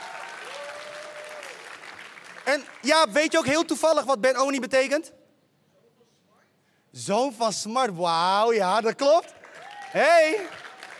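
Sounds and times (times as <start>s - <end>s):
crowd applauding steadily: 0.0s - 3.1s, 9.2s - 10.9s
speech: 2.4s - 5.2s, 6.9s - 10.6s.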